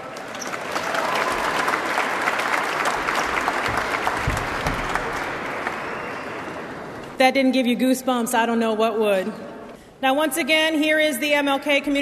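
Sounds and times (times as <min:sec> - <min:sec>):
crowd clapping: 0:00.0 - 0:07.2
speech: 0:07.2 - 0:12.0.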